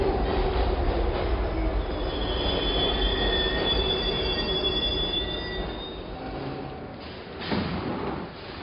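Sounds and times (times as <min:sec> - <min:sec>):
metro train rumbling at an underground platform: 0:00.0 - 0:08.6
thin high metro train wheel squeals: 0:01.8 - 0:06.2.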